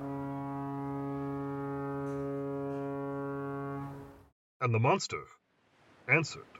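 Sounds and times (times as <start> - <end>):
deep foghorn blowing: 0.0 - 4.3
speech: 4.6 - 5.4, 6.1 - 6.5.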